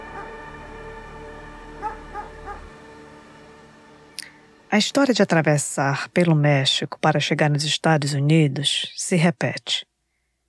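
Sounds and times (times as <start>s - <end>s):
dog barking: 0.1s - 0.4s, 1.8s - 2.7s
speech: 4.7s - 9.9s.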